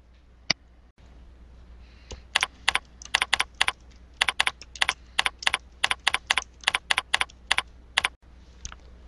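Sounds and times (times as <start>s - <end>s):
typing on a computer keyboard: 2.4s - 8.2s.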